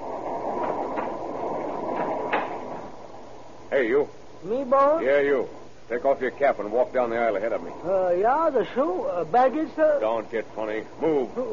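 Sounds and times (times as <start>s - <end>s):
train wheels clacking over rail joints: 0.0s - 3.1s
train rumbling as it gains speed: 0.0s - 3.4s
speech: 3.8s - 11.5s.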